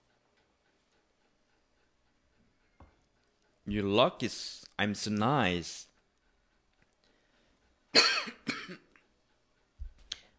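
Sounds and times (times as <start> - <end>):
speech: 3.7 - 5.9, 7.9 - 8.2
person coughing: 8.0 - 8.9.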